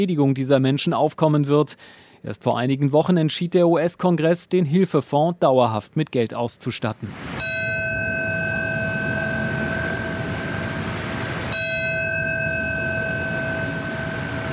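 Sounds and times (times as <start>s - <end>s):
speech: 0.0s - 7.5s
steady outdoor noise: 7.0s - 14.5s
deep memorial bell tolling: 7.4s - 14.5s.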